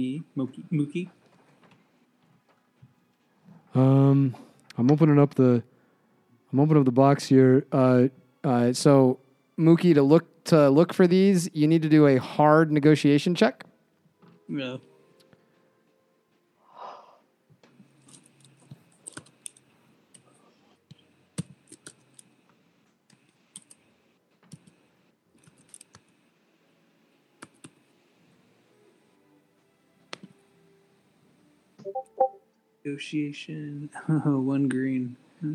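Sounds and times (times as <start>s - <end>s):
speech: 0.0s - 1.3s, 3.7s - 5.7s, 6.5s - 13.7s, 14.5s - 14.9s, 32.8s - 35.5s
typing on a computer keyboard: 18.1s - 20.3s, 21.4s - 22.3s, 23.1s - 23.8s, 24.4s - 24.8s, 27.4s - 27.8s.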